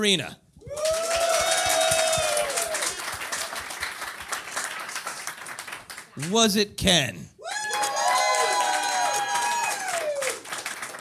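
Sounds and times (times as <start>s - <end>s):
speech: 0.0s - 0.4s, 6.2s - 7.3s
audience whoops and cheers: 0.6s - 3.2s, 7.4s - 10.6s
audience applause with dense clapping: 0.7s - 6.3s, 7.5s - 10.9s.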